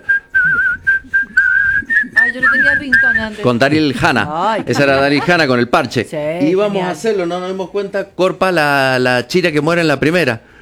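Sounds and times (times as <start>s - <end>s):
whistled melody from a film soundtrack: 0.0s - 3.4s
laughter: 0.5s - 5.8s
speech: 2.3s - 10.5s.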